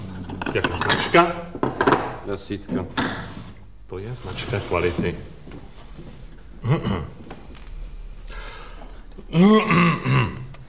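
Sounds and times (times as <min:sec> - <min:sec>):
speech: 0:00.5 - 0:03.2, 0:03.9 - 0:05.6, 0:06.6 - 0:07.2, 0:09.3 - 0:10.3
person coughing harshly: 0:06.6 - 0:07.2, 0:09.3 - 0:10.6
throat clearing: 0:06.6 - 0:07.2, 0:09.2 - 0:10.6.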